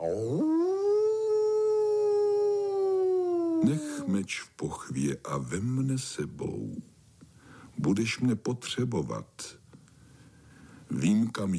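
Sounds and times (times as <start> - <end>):
large grey wolf howling: 0.0 - 4.2
speech: 3.7 - 6.9, 7.8 - 9.6, 10.9 - 11.5.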